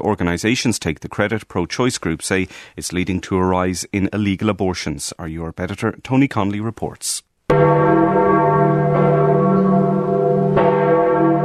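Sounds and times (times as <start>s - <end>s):
speech: 0.0s - 8.0s
large church bells ringing: 7.5s - 11.4s.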